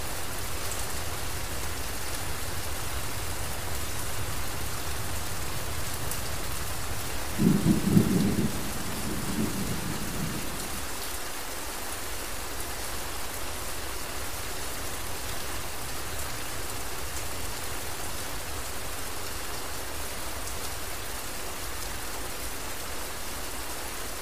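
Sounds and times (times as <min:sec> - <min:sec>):
steady rain hissing: 0:00.0 - 0:24.2
low rumble of thunder: 0:06.4 - 0:11.0.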